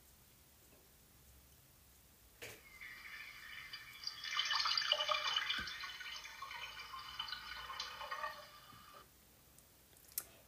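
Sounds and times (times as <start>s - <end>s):
water running from a tap: 2.4s - 9.1s.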